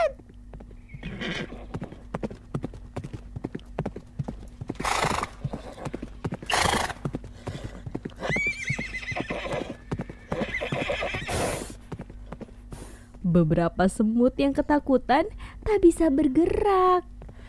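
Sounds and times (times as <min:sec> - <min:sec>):
horse hooves clip-clopping: 0:00.0 - 0:15.0, 0:15.6 - 0:17.4
horse neighing and whinnying: 0:00.9 - 0:02.0, 0:04.8 - 0:11.8
horse snorting: 0:04.7 - 0:13.1
speech: 0:13.4 - 0:17.1.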